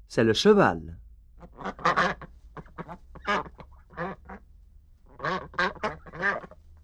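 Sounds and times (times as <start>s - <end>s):
speech: 0.1s - 1.9s
duck quacking: 1.4s - 4.5s, 5.1s - 6.6s.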